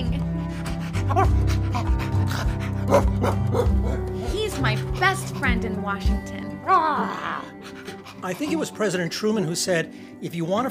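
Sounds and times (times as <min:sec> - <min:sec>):
dog panting: 0:00.0 - 0:06.4, 0:07.5 - 0:09.0
speech: 0:01.1 - 0:01.5, 0:05.4 - 0:10.7
dog barking: 0:02.8 - 0:04.1.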